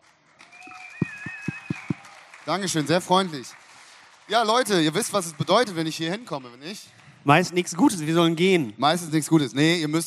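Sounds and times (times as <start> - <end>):
sharp claps: 0.0 - 7.1
thin high whistling tones: 0.6 - 2.0
speech: 2.4 - 3.6, 4.3 - 10.0.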